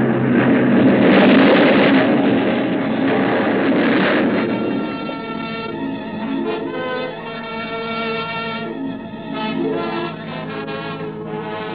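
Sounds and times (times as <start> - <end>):
explosion: 0.0 - 8.8
ship crashing onto a reef in fog: 0.0 - 11.7.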